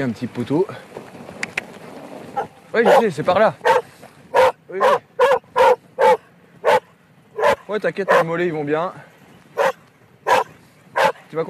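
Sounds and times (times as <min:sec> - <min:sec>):
speech: 0:00.0 - 0:00.9, 0:02.7 - 0:03.7, 0:07.7 - 0:09.1
dog barking at a person on a snowy mountain pasture: 0:02.4 - 0:08.3, 0:09.6 - 0:11.3.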